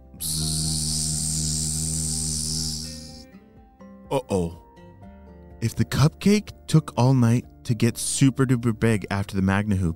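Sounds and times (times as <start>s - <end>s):
loud fly buzzing: 0.0s - 3.3s
speech: 4.1s - 4.6s, 5.6s - 9.9s.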